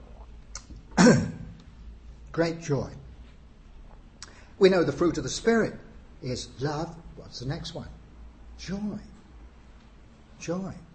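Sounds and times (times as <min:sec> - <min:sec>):
audience member coughing during an evening talk: 0:01.0 - 0:01.5
speech: 0:02.4 - 0:03.0, 0:04.6 - 0:08.0, 0:08.6 - 0:09.1, 0:10.4 - 0:10.9.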